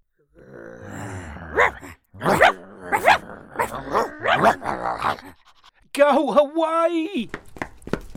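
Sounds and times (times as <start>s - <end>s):
several dogs barking in an overlapping chorus: 1.5s - 5.4s
speech: 6.1s - 7.4s.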